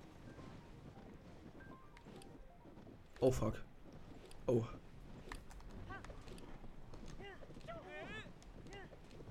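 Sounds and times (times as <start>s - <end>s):
horse galloping while pulling a wagon: 0.0s - 9.3s
speech: 3.2s - 3.7s, 4.5s - 4.9s.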